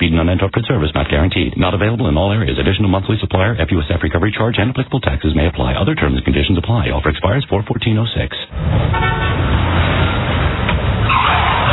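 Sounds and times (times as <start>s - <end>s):
speech: 0.0s - 9.8s
engine and road noise: 0.0s - 11.7s
car roaring past on a street: 8.5s - 11.7s
rising screech: 9.4s - 11.7s
sharp tyre squeal: 11.0s - 11.7s.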